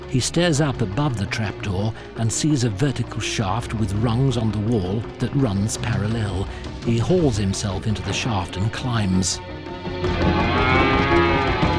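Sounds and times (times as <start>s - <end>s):
speech: 0.1s - 10.4s
cows mooing in a barn beside a grain silo: 10.0s - 11.7s.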